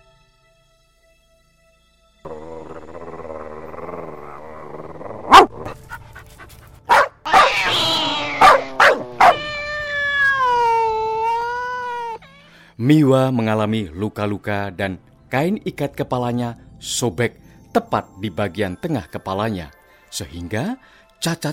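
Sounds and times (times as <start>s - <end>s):
dog drawn-out wavering howl or whine: 2.3s - 6.0s, 6.9s - 12.2s
dog low growling rumble: 2.3s - 7.6s, 8.3s - 9.4s
dogs barking aggressively: 5.3s - 7.5s, 8.4s - 9.4s
speech: 13.0s - 21.5s.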